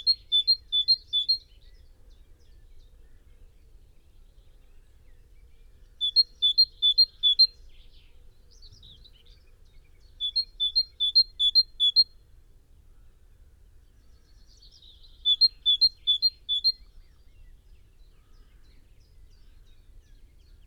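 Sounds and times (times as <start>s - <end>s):
great tit Parus major song of ringing two-note phrases: 0.0s - 1.5s, 6.0s - 7.5s, 10.1s - 12.1s, 14.7s - 16.9s.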